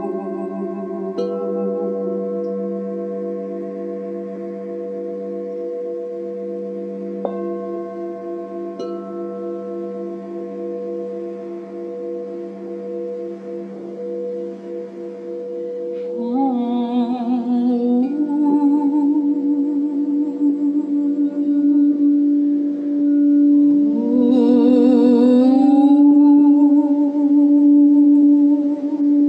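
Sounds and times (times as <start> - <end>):
crystal singing bowls humming: 0.0 - 29.2.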